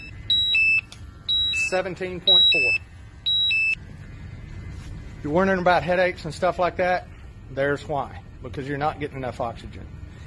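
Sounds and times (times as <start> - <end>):
gas detector alarm beeping warning of hazardous low-oxygen atmosphere: 0.0 - 3.8
speech: 1.7 - 2.9, 5.2 - 10.0.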